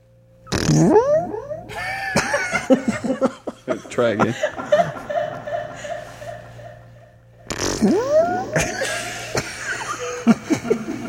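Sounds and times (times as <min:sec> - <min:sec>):
mouth-made raspberry imitating a fart with echo effect: 0:00.5 - 0:02.7, 0:05.6 - 0:10.7
laughter: 0:01.7 - 0:07.2, 0:08.0 - 0:11.0
speech: 0:02.7 - 0:03.3, 0:04.0 - 0:04.7, 0:07.8 - 0:08.7.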